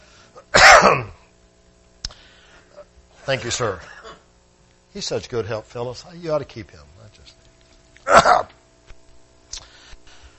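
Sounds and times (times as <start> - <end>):
audience member coughing harshly: 0.4 - 1.2, 3.8 - 4.3, 8.0 - 8.6
speech: 0.8 - 1.2, 3.3 - 4.0, 5.0 - 6.9.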